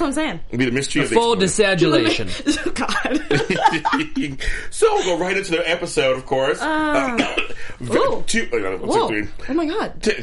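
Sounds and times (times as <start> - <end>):
speech: 0.0 - 10.2
laughter: 2.0 - 5.9
raspy gravelly coughs: 7.0 - 7.7
throat clearing: 7.0 - 7.7.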